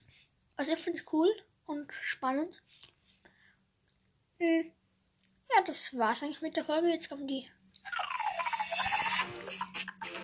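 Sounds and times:
speech: 0.6 - 2.9, 4.4 - 4.8, 5.5 - 8.0
novelty alarm clock squealing electronic tone: 7.9 - 10.2
hiss: 8.0 - 10.2.

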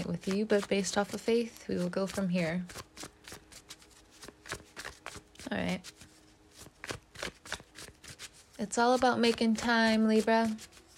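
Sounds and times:
tarot cards shuffling with papery flicks and riffles: 0.0 - 10.9
speech: 0.1 - 3.1, 5.5 - 6.0, 8.6 - 10.7.

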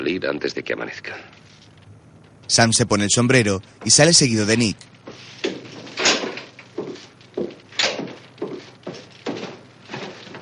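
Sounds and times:
speech: 0.0 - 1.5, 2.5 - 5.3
dull wooden thunks and knocks with a brief rattle: 5.0 - 10.4
wooden door shutting and being bolted: 5.4 - 10.4.

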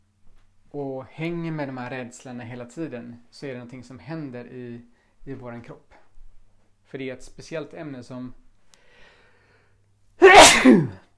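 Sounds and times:
speech: 0.7 - 6.0, 6.9 - 8.4, 10.5 - 11.0
sneeze: 10.2 - 11.1.

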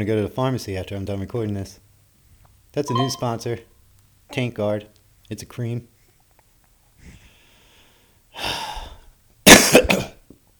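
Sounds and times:
speech: 0.0 - 1.9, 2.7 - 3.7, 4.3 - 5.9
person coughing with raspy breathy hacks: 9.5 - 10.2.

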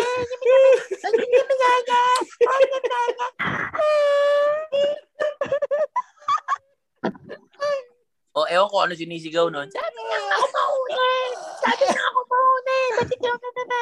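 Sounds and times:
voice imitating crying with exaggerated sobbing wails: 0.0 - 5.7, 9.7 - 13.8
speech: 8.6 - 12.2.

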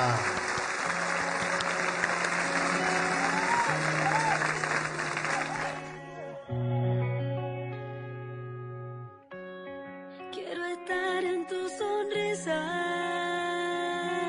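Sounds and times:
crowd applause welcoming a guest: 0.0 - 6.3
soft music: 0.0 - 14.2.

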